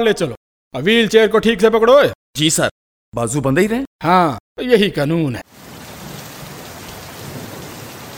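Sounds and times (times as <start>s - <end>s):
speech: 0.0s - 5.6s
rain pouring down steadily: 5.4s - 8.1s.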